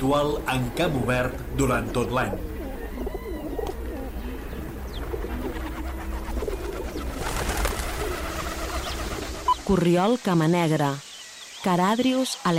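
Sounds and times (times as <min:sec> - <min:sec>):
speech: 0:00.0 - 0:02.5, 0:09.7 - 0:11.0, 0:11.6 - 0:12.5
rock dove cooing: 0:00.0 - 0:09.6
faint chirps of other birds: 0:00.0 - 0:12.5.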